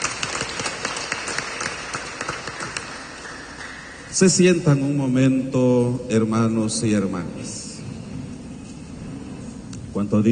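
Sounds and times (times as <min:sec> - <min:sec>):
congregation clapping hands: 0:00.0 - 0:04.4
speech: 0:04.2 - 0:07.6, 0:10.0 - 0:10.3.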